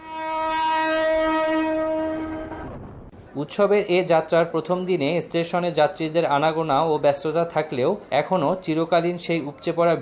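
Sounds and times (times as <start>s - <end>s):
express passenger train horn blast departing a railway station at dawn: 0.0s - 2.8s
faint rumble: 2.0s - 3.3s
speech: 3.4s - 10.0s.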